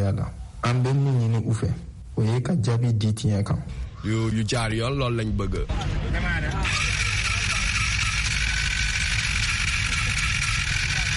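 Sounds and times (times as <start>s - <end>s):
speech: 0.1s - 7.0s
broken motorcycle engine struggling to start and running rough: 6.6s - 11.1s.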